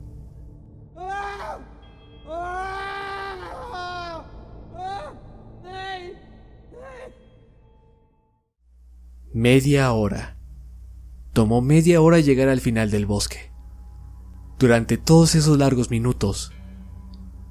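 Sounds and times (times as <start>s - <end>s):
person screaming in horror in a forest: 1.0s - 7.2s
speech: 9.4s - 10.3s, 11.4s - 13.5s, 14.6s - 16.6s.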